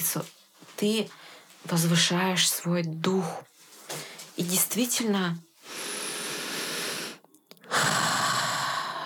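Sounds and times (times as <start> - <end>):
speech: 0.0 - 3.5, 4.4 - 5.5
long deep breath drawn in: 5.6 - 9.0.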